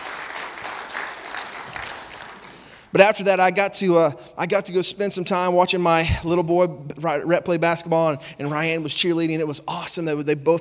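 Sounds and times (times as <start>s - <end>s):
crowd applauding: 0.0s - 2.9s
speech: 2.9s - 10.5s.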